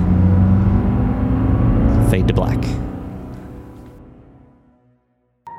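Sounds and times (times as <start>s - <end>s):
car engine revving and accelerating: 0.0s - 4.4s
speech: 2.2s - 3.0s.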